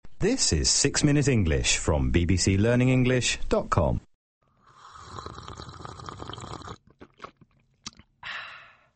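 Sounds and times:
speech: 0.2 - 4.1
slurping sip of coffee from a cup: 4.6 - 8.1
swallow: 4.7 - 8.4.

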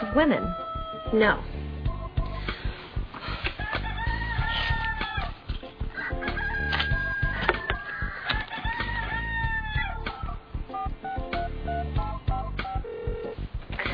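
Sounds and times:
rooster crowing: 0.0 - 1.2, 3.6 - 10.0
flock of chickens clucking and squawking: 0.0 - 1.3, 1.9 - 12.8
speech: 0.0 - 1.6.

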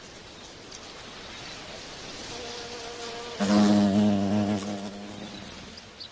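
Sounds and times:
bee buzzing at a flower: 2.3 - 5.8.

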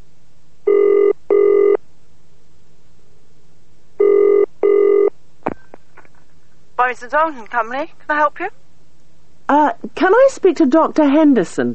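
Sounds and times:
telephone ringing with double-burst buzzing trills: 0.7 - 1.8, 4.0 - 5.1
speech: 6.8 - 8.6, 9.5 - 11.7.

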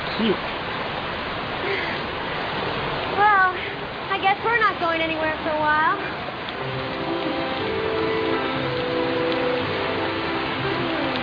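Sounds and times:
steady even hiss of rain falling: 0.0 - 11.2
speech: 0.2 - 0.5, 4.2 - 6.9.

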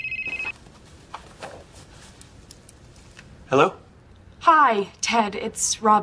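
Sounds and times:
telephone ringing with electronic trill: 0.0 - 0.6
speech: 3.5 - 3.8, 4.5 - 6.0.

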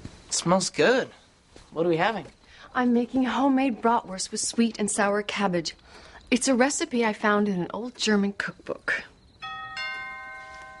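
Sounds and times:
speech: 0.3 - 9.1
two-note doorbell chime: 9.4 - 10.7.

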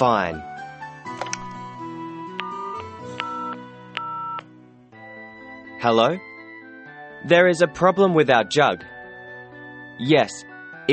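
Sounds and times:
speech: 0.0 - 0.5, 5.8 - 6.3, 7.2 - 8.9, 10.0 - 10.9
hotel telephone ringing while calling housekeeping: 2.4 - 4.4.

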